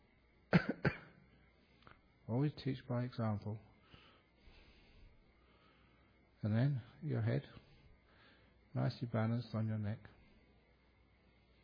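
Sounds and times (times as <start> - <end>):
person coughing: 0.5 - 1.2
speech: 2.3 - 3.7, 6.4 - 7.6, 8.7 - 10.2.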